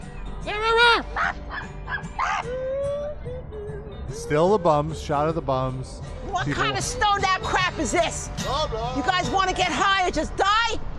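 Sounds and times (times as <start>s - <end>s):
dog thin drawn-out yelp: 0.7s - 2.6s
dog barking and yipping on a street in New York: 1.2s - 2.5s
speech: 4.2s - 10.9s.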